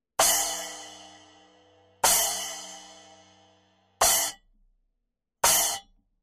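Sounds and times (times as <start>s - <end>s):
Meinl CC10S cymbal: 0.2s - 4.4s, 5.4s - 5.9s.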